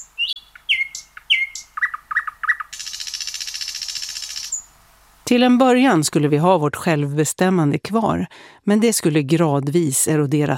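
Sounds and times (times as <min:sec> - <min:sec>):
nightingale singing: 0:00.0 - 0:06.4
speech: 0:05.3 - 0:10.5.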